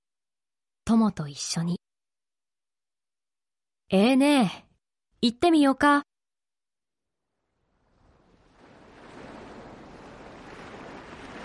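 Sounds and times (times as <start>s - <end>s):
speech: 0.9s - 1.8s, 3.9s - 4.6s, 5.2s - 6.1s
small waves lapping onto a little beach: 7.3s - 11.4s.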